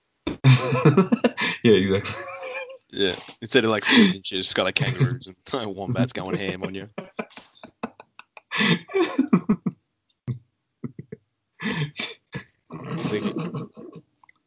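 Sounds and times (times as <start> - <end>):
laughter: 0.4 - 9.7, 13.0 - 13.9
man having a heavy coughing fit: 0.5 - 2.2, 3.0 - 5.3, 5.9 - 6.9
speech: 0.6 - 2.3, 2.9 - 7.4, 13.0 - 14.1.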